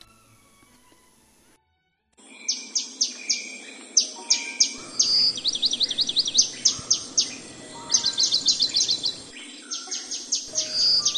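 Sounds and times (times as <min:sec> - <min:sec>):
soft outdoor ambience by a lakeside: 0:00.0 - 0:01.6, 0:02.2 - 0:11.1
birds chirping and singing by a willow-lined lakeside in China in spring: 0:02.2 - 0:11.1.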